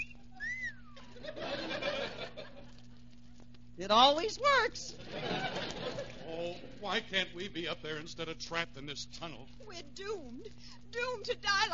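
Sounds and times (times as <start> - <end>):
man's wolf whistle at a woman: 0.0 - 1.0
low steady hum: 0.0 - 11.7
burst of chuckling laughter: 1.0 - 2.8, 5.0 - 6.2
speech: 3.8 - 5.5, 6.8 - 11.7.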